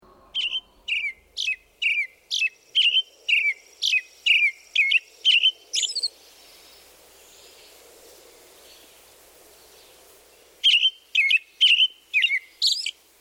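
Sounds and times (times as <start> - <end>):
American robin song: 0.0 - 7.8, 9.6 - 13.0
faint background noise: 0.0 - 13.1.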